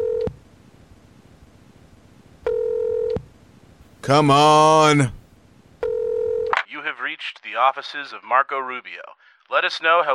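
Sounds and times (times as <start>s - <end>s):
phone line ringing with electronic tones: 2.5s - 3.2s, 5.8s - 6.5s
speech: 4.1s - 5.2s, 7.1s - 10.1s.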